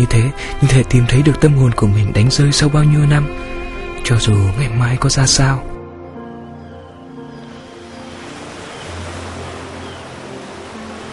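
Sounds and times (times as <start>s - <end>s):
speech: 0.0s - 5.7s
sea waves washing against a shore: 7.4s - 11.1s.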